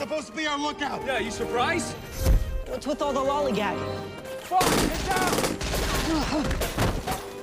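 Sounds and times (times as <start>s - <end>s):
speech: 0.2s - 5.5s, 6.1s - 6.8s
loud sustained gunfire: 4.6s - 7.1s.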